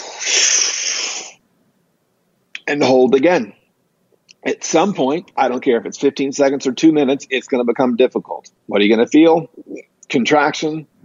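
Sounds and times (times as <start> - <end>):
big breath drawn in during a breathing exercise: 0.0 - 1.4
speech: 2.7 - 3.6, 4.4 - 10.9.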